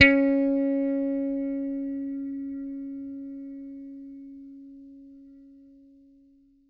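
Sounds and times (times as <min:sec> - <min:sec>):
plucked bass note C sharp 4: 0:00.0 - 0:05.1.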